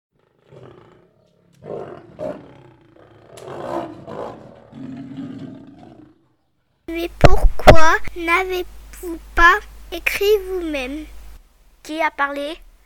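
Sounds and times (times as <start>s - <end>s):
lion roaring: 0.2s - 6.8s
speech: 6.9s - 11.2s, 11.8s - 12.6s.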